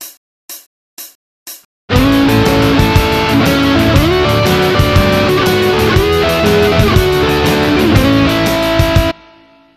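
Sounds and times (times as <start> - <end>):
blues guitar: 1.9 - 9.7.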